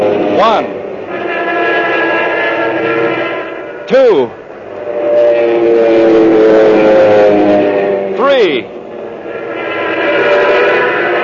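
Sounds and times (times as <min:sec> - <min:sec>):
RAF fighter aircraft propeller engine drone over Malta: 0:00.0 - 0:11.2
speech: 0:00.4 - 0:00.8, 0:03.9 - 0:04.4.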